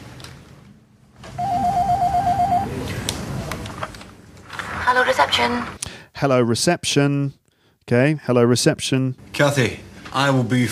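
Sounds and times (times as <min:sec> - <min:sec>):
office telephone ringing with a warbling electronic tone: 0:01.3 - 0:02.7
speech: 0:04.9 - 0:10.6.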